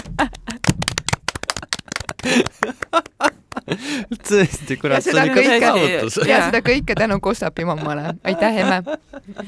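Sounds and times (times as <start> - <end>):
hand clapping: 0.0 - 3.8
speech: 0.2 - 0.4, 3.7 - 9.4
laughter: 1.4 - 9.4.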